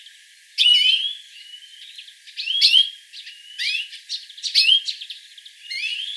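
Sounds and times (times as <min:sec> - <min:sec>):
European greenfinch Chloris chloris twittering chirps and thin rising whistles: 0:00.6 - 0:06.1.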